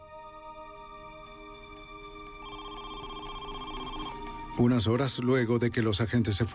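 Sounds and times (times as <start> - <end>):
telephone ringing with a bright electronic tone: 2.4 - 5.2
speech: 4.6 - 6.5.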